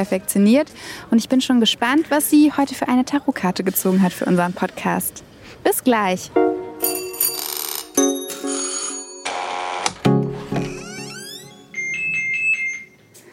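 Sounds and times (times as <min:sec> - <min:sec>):
speech: 0:00.0 - 0:07.0
modern electronic doorbell ringtone: 0:06.8 - 0:13.0.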